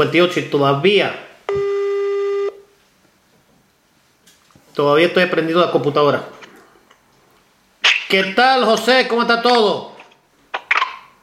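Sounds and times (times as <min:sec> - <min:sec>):
speech: 0:00.0 - 0:01.6, 0:04.8 - 0:06.4, 0:08.1 - 0:09.9
video call ringing tone: 0:01.5 - 0:02.6.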